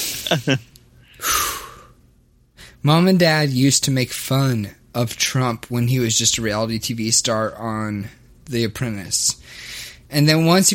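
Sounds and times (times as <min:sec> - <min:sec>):
speech: 0:00.3 - 0:01.4, 0:02.8 - 0:10.7
person taking a deep breath: 0:01.0 - 0:02.0, 0:09.4 - 0:10.0.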